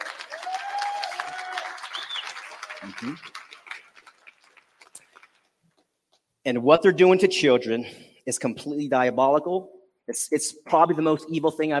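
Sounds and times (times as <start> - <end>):
audience clapping: 0.0 - 5.7
speech: 2.8 - 3.4, 6.4 - 11.7.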